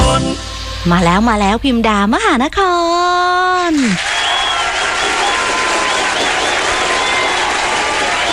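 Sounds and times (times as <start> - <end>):
speech: 0.2 - 4.2
crowd applause welcoming the host: 3.9 - 8.3
faint cheering: 4.0 - 8.3.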